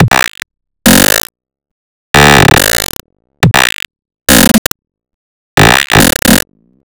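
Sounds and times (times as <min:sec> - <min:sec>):
stutter sounds loop at 140 bpm: 0:00.0 - 0:01.3, 0:02.2 - 0:04.8, 0:05.6 - 0:06.5.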